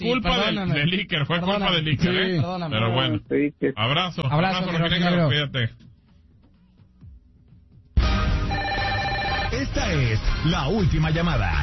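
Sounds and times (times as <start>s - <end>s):
speech: 0.0s - 5.9s, 9.6s - 11.6s
machine beeps on a phone line: 8.5s - 9.6s.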